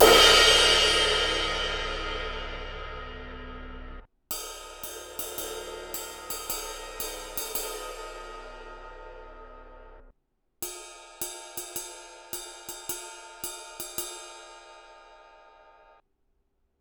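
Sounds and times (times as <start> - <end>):
22 inch crash cymbal: 0.0 - 10.1.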